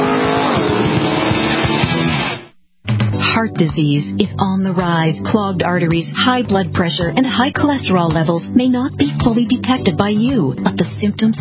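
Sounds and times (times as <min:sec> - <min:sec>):
sports racing car engine roaring at a sports car race in Sebring: 0:00.0 - 0:02.5
speech: 0:03.4 - 0:11.3.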